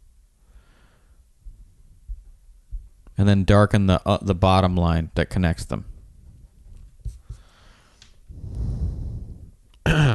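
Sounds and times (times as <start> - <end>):
heavy close-miked breathing of a person drawing: 0.4 - 1.3, 7.2 - 9.7
speech: 3.2 - 5.9.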